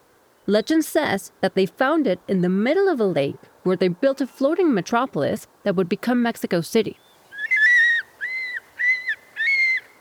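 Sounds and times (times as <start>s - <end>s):
speech: 0.5s - 7.0s
Golden Eagle clear whistled calls: 7.0s - 9.9s.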